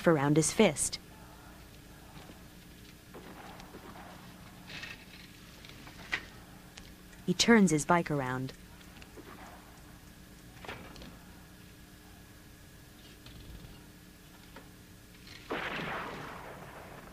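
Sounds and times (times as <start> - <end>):
speech: 0.0 - 1.0, 7.3 - 8.6
single sharp loud gunshot: 15.5 - 17.1.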